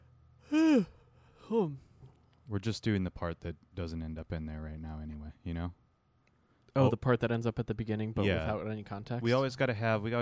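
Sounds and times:
person yawning: 0:00.4 - 0:01.8
speech: 0:00.7 - 0:01.9, 0:02.5 - 0:05.8, 0:06.8 - 0:10.2.

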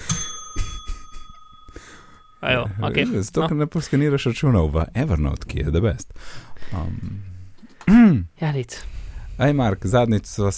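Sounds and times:
small metallic bell struck and ringing: 0:00.0 - 0:03.1
speech: 0:02.4 - 0:07.3, 0:07.9 - 0:10.5.

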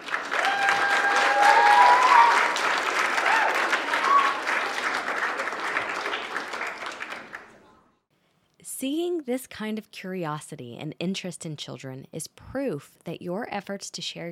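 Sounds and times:
sizable crowd applauding: 0:00.0 - 0:07.7
faint whistles and cheers: 0:00.3 - 0:04.6
speech: 0:09.3 - 0:14.2.

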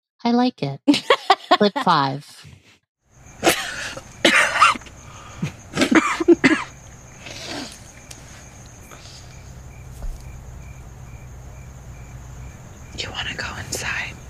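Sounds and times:
speech: 0:00.2 - 0:02.3
laughter: 0:00.9 - 0:02.0
insects chirping: 0:03.0 - 0:14.2
person coughing harshly after inhaling a first cigarette outdoors: 0:03.4 - 0:04.9, 0:05.7 - 0:06.7
person breathing: 0:04.9 - 0:05.6, 0:07.2 - 0:09.5.

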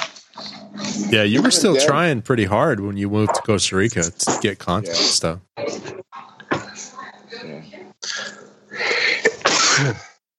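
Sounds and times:
indistinct voices: 0:00.4 - 0:09.0
speech: 0:01.0 - 0:05.9
loud sneeze: 0:09.1 - 0:10.2.

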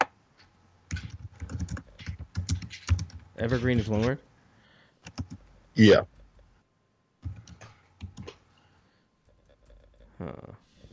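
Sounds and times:
typing on a computer keyboard: 0:00.9 - 0:03.2, 0:05.0 - 0:05.5, 0:07.2 - 0:08.4
speech: 0:03.4 - 0:04.3, 0:05.8 - 0:06.2.

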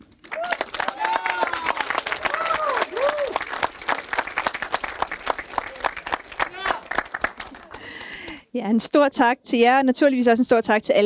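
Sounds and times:
live cinema audience clapping: 0:00.0 - 0:08.4
cheers and whoops from a live cinema audience: 0:00.2 - 0:03.7, 0:05.6 - 0:07.8
speech: 0:08.6 - 0:11.0.

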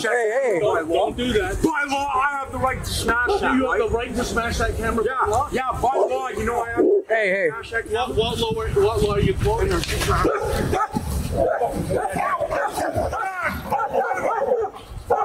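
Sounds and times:
speech: 0:00.0 - 0:13.2
dog barking and yipping: 0:03.3 - 0:03.6, 0:05.2 - 0:06.2, 0:10.2 - 0:15.2.

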